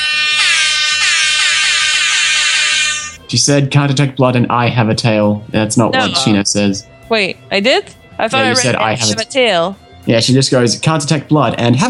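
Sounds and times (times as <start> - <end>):
air horn blast: 0.1 - 3.2
speech: 3.3 - 11.8.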